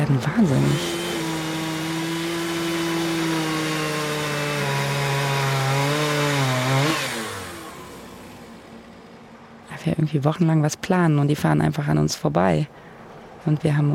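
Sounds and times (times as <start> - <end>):
chainsaw cutting trees: 0.0 - 9.6
speech: 0.1 - 1.0, 10.0 - 13.9.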